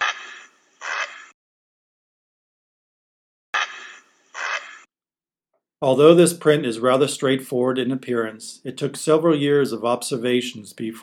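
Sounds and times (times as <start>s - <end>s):
heron giving harsh rasping squawks: 0.0s - 1.3s, 3.6s - 4.9s
speech: 5.8s - 11.0s.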